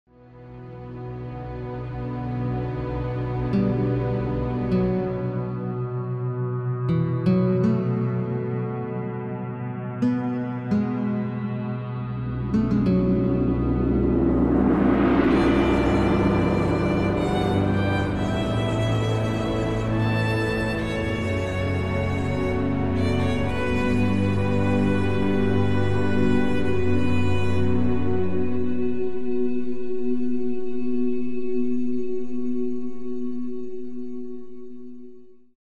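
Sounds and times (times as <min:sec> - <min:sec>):
violin: 0:00.2 - 0:06.2, 0:11.1 - 0:30.1
guitar: 0:00.3 - 0:35.0.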